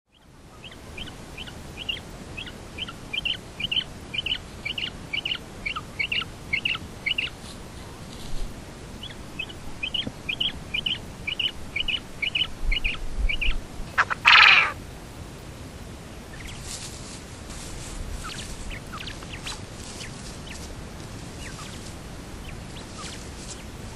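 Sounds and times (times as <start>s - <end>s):
Japanese quail calling: 0.1s - 7.4s, 9.0s - 14.8s, 18.2s - 20.7s, 21.3s - 23.9s.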